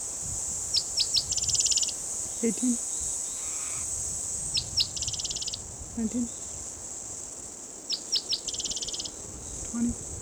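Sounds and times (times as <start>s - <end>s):
cicadas buzzing: 0.1s - 10.2s
speech: 2.4s - 2.9s, 6.0s - 6.4s, 9.8s - 10.2s.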